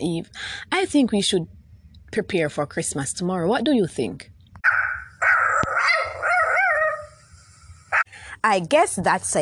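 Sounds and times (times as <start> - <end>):
speech: 0.0 - 4.3, 8.4 - 9.4
dog barking and yowling: 4.6 - 7.2.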